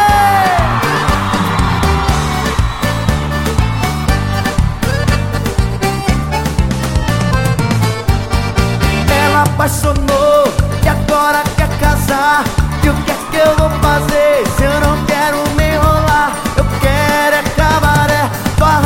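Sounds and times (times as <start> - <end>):
women in a concert audience screaming and whooping: 0.0 - 5.3, 11.4 - 18.8
dense driving live band playing: 0.0 - 18.8.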